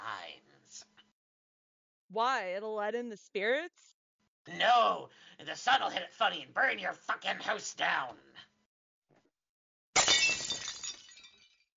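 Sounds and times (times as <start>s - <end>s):
speech: 2.1s - 8.5s
glass shattering: 10.0s - 11.7s.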